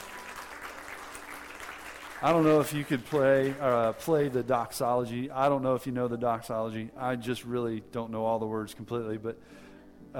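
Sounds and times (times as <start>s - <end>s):
audience applauding: 0.0s - 4.8s
speech: 2.2s - 10.1s.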